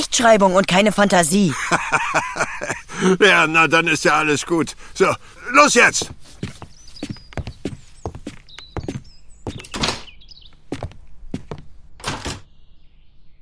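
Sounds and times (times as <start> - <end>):
speech: 0.1 - 6.6
laughter: 1.5 - 5.1
faint high chirping: 5.6 - 10.7
door closing: 9.5 - 10.2, 12.0 - 12.5.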